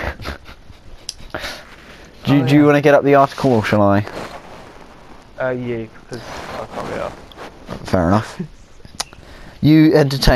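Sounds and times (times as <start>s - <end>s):
speech: 1.3s - 1.6s, 2.2s - 4.3s, 5.4s - 8.6s, 9.6s - 10.3s
dog snuffling or lightly panting: 3.4s - 8.2s.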